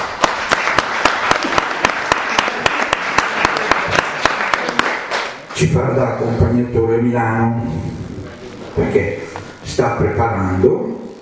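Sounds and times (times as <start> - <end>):
audience applause at an evening lecture: 0.0 - 5.7
speech: 5.6 - 8.2, 8.8 - 11.0.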